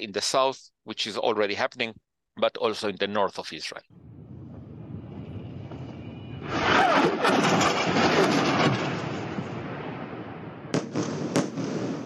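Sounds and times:
speech: 0:00.0 - 0:04.1
bomb blasts from army airstrikes: 0:03.9 - 0:12.0.

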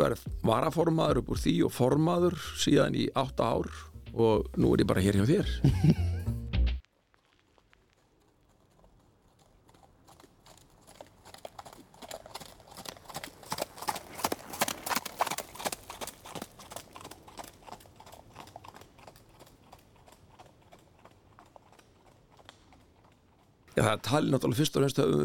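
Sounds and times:
speech: 0:00.0 - 0:06.2, 0:23.8 - 0:25.2
laughter: 0:05.4 - 0:06.3
horse hooves clip-clopping at a walk: 0:06.8 - 0:24.4.

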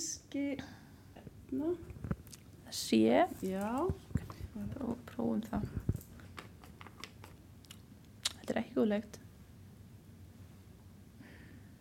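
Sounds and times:
speech: 0:00.3 - 0:00.8, 0:01.5 - 0:02.1, 0:02.7 - 0:05.9, 0:08.8 - 0:09.2
person chewing olives: 0:02.2 - 0:02.5.

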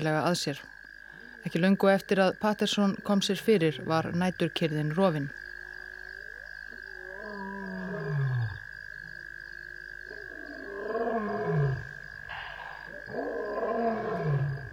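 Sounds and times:
speech: 0:00.0 - 0:00.8, 0:01.4 - 0:05.4
high-pitched drone of night insects: 0:00.0 - 0:14.7
lion roaring: 0:07.0 - 0:08.6, 0:10.1 - 0:14.7.

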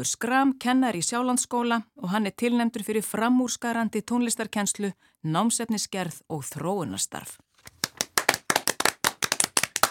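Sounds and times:
speech: 0:00.0 - 0:07.5
small group applauding with hands clapping: 0:07.7 - 0:09.9.

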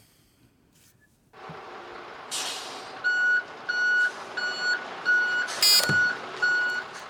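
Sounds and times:
rumbling truck engine: 0:01.4 - 0:07.0
truck air-brake hissing: 0:02.2 - 0:03.1, 0:05.4 - 0:06.0
truck reversing alarm beeping: 0:03.0 - 0:07.0.

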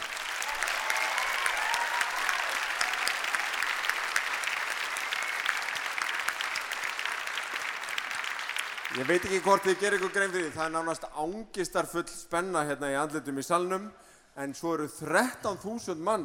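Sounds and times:
large audience applauding: 0:00.0 - 0:10.9
speech: 0:09.0 - 0:16.2.

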